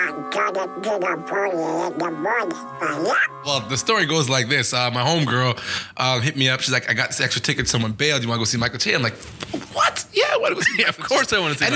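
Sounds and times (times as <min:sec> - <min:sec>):
speech: 0:00.4 - 0:11.7
cartoon duck character voice quacking: 0:01.0 - 0:03.4.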